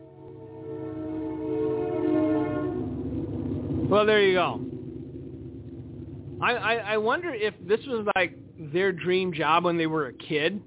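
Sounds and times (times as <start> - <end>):
train whistle blowing: 0.0 - 2.9
low rumble: 0.0 - 10.6
speech: 3.9 - 4.7, 6.4 - 10.6.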